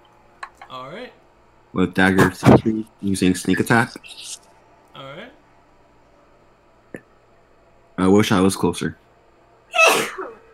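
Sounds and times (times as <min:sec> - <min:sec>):
speech: 0:00.7 - 0:05.4, 0:08.0 - 0:09.0
person sneezing: 0:09.7 - 0:10.4.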